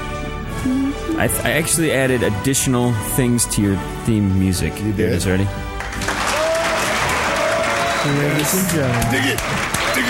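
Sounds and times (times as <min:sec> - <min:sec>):
speech: 0:00.6 - 0:05.7, 0:08.0 - 0:10.0
dense steady crowd applause: 0:05.8 - 0:10.0.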